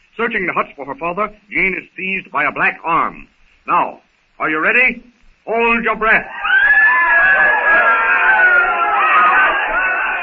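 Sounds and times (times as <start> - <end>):
speech: 0.2 - 6.5
woman screaming: 6.3 - 10.1.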